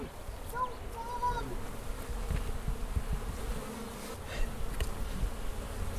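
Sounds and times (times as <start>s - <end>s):
many honeybees buzzing around a hive: 0.0s - 5.9s
individual bees whining past: 1.2s - 5.9s.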